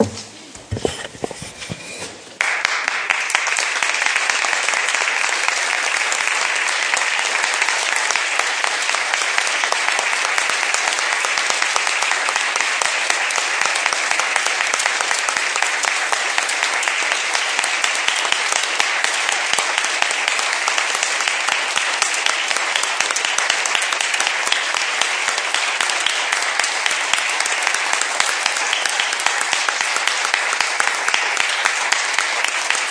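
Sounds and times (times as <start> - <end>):
large crowd applauding: 2.4 - 32.9.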